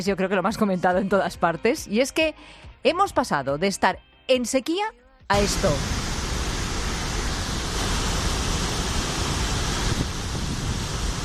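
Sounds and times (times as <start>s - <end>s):
speech: 0.0s - 6.0s
water released from a reservoir dam after heavy rain: 5.3s - 11.2s.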